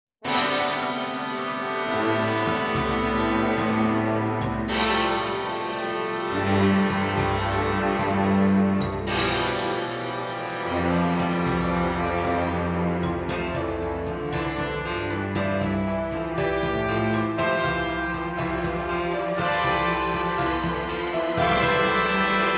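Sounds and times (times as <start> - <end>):
orchestral underscore: 0.2 - 22.5.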